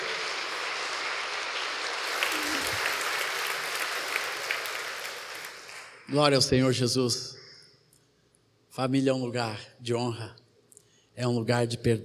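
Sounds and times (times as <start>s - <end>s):
audience applauding: 0.0s - 6.2s
speech: 6.1s - 7.4s, 8.8s - 10.4s, 11.2s - 12.0s.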